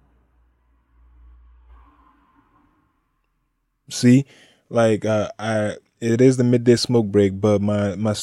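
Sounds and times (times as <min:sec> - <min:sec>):
car driving past outdoors: 0:00.0 - 0:03.7
speech: 0:03.9 - 0:08.2.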